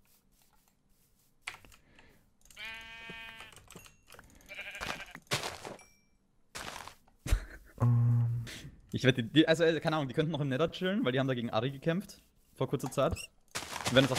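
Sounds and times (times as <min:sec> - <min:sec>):
video game sheep bleating: 0:02.6 - 0:03.6, 0:04.4 - 0:05.4
low buzzing tone: 0:07.8 - 0:08.6
speech: 0:09.0 - 0:14.1.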